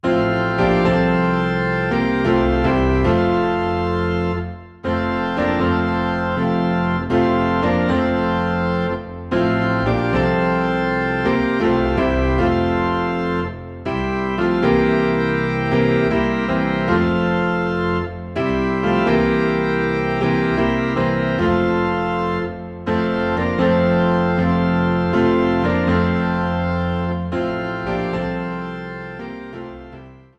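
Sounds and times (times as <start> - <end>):
low organ note in F: 0.1 - 30.2.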